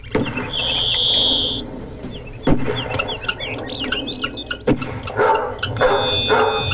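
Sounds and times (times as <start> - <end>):
Alaska songbirds singing and chirping: 0.0 - 6.7
dog barking in short bursts: 5.0 - 6.7.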